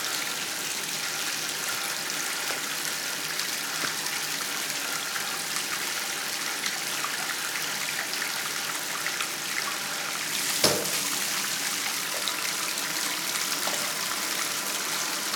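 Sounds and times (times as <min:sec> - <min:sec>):
water running steadily into a bathtub: 0:00.0 - 0:15.3
faint small clicks and drips: 0:00.1 - 0:09.8
brief knock or splash: 0:10.5 - 0:11.1.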